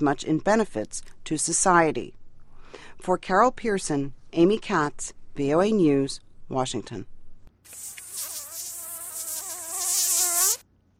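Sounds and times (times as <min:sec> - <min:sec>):
speech: 0:00.0 - 0:07.1
mosquito buzzing: 0:07.7 - 0:10.6.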